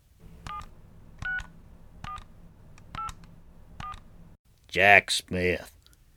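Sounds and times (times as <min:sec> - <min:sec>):
touch-tone telephone keypad dual-tone beeps: 0:00.2 - 0:04.2
speech: 0:04.7 - 0:05.8.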